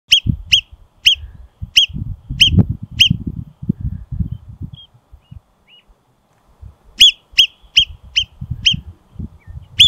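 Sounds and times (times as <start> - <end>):
marmot calling: 0.1 - 3.2, 4.3 - 5.9, 7.0 - 9.8.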